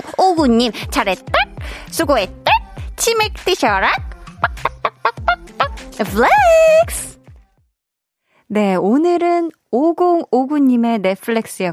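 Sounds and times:
speech: 0:00.4 - 0:02.4, 0:03.0 - 0:04.1, 0:06.0 - 0:07.1, 0:08.5 - 0:11.7
voice imitating a chicken clucking as cheerful praise: 0:01.3 - 0:01.6, 0:04.3 - 0:07.0.

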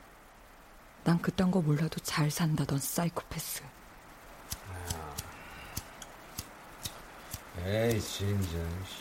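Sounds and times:
faint hum: 0:00.0 - 0:09.0
speech: 0:01.0 - 0:03.8, 0:07.6 - 0:09.0
lighter clicking without igniting while lighting a cigarette: 0:04.4 - 0:08.6.

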